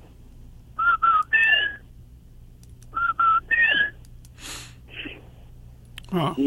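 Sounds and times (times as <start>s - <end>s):
person whistling an imitation of a night animal call: 0.8s - 1.8s, 3.0s - 4.0s
breathy exhales: 4.4s - 5.3s.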